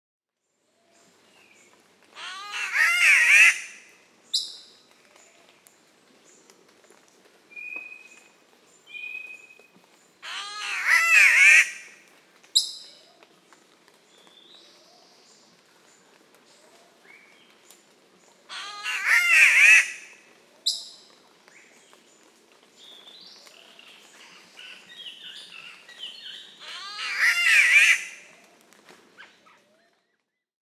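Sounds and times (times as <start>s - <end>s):
spotted catbird Ailuroedus maculosus calling: 2.2s - 3.8s, 10.2s - 11.9s, 18.5s - 20.1s, 26.6s - 28.2s.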